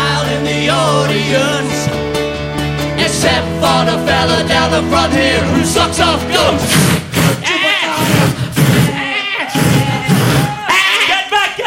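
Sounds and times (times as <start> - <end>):
low rumbling crowd noise: 0.0 - 11.6
voices imitating goats bleating during a stage performance: 5.4 - 11.6.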